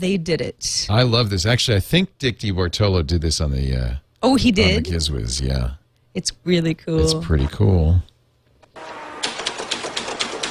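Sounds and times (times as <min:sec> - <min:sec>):
speech: 0:00.0 - 0:08.1
mechanical typewriter keys clacking: 0:09.2 - 0:10.4.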